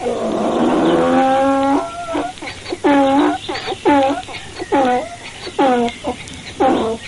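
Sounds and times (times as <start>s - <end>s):
donkey braying: 0.0s - 7.0s.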